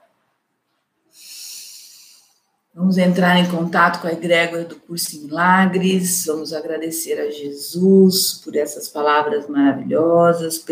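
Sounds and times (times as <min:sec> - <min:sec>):
deep breath in: 0:01.1 - 0:02.6
speech: 0:02.8 - 0:10.7.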